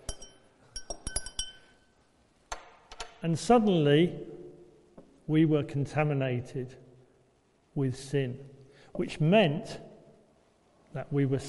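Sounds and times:
liquid stirred in a glass: 0.0 - 1.8
glass clinking: 0.0 - 2.0
speech: 3.2 - 4.3, 5.3 - 6.8, 7.8 - 9.9, 10.9 - 11.4.

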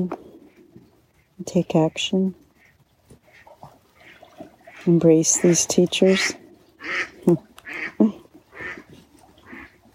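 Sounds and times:
speech: 0.0 - 0.2, 1.4 - 2.4, 4.8 - 8.2
duck quacking: 3.3 - 9.8.

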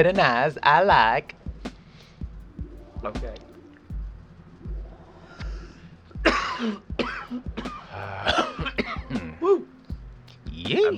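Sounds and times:
speech: 0.0 - 1.4, 3.0 - 3.5, 6.6 - 8.5, 10.6 - 10.9
harsh coughs: 6.2 - 9.4.

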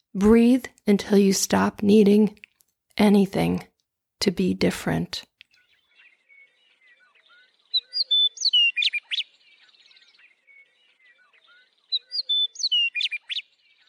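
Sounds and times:
speech: 0.2 - 5.3
songbird singing whistles and trills in southeastern Pennsylvania: 5.4 - 13.8.

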